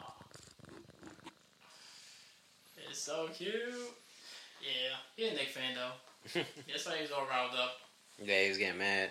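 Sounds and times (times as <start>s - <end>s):
male domestic cat purring: 0.0s - 2.2s
speech: 2.9s - 4.0s, 4.6s - 9.0s.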